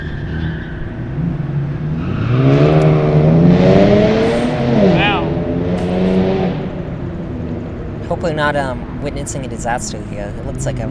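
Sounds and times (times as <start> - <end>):
car driving past accelerating: 1.1 - 8.1
speech: 8.4 - 10.8.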